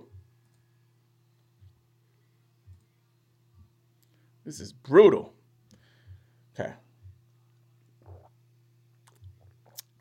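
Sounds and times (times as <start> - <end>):
low steady electrical hum: 0.0 - 9.9
speech: 4.5 - 5.3, 6.6 - 6.8
sipping and gulping of water: 8.0 - 8.4, 9.0 - 9.9.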